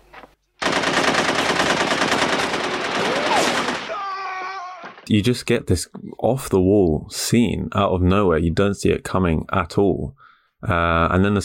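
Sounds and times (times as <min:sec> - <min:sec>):
rapid automatic gunfire in a film dream scene: 0:00.6 - 0:04.1
speech: 0:05.1 - 0:11.4.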